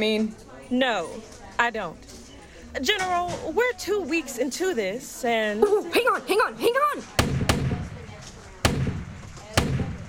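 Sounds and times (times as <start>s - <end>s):
speech: 0.0s - 7.4s
gunshots in a wartime setting: 7.2s - 10.0s.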